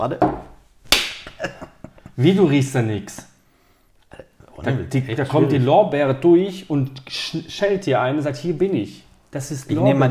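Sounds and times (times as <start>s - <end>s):
speech: 0.0s - 0.5s, 2.2s - 3.3s, 4.6s - 10.1s
loud slap: 0.9s - 1.4s.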